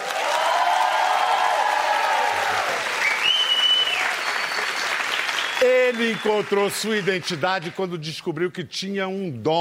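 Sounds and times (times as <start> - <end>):
large audience applauding loudly: 0.0 - 8.0
whistle: 3.0 - 6.4
speech: 5.9 - 9.5.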